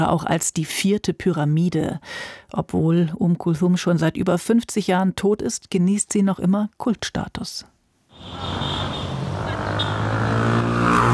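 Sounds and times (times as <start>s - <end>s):
speech: 0.0s - 8.9s
city traffic roar around a traffic island between two large streets in Cairo: 8.1s - 11.1s.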